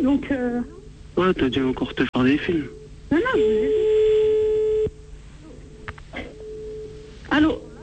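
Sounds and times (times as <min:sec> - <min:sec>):
speech: 0:00.0 - 0:04.1
telephone call tone while placing a call: 0:03.1 - 0:05.0, 0:05.7 - 0:07.8.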